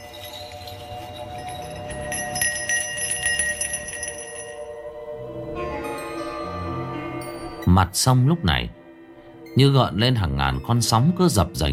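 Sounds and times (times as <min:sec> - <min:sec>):
silver bell shaken in a ritual by a priest on a riverbank: 0:00.0 - 0:04.8
speech: 0:07.8 - 0:08.8, 0:09.6 - 0:11.7.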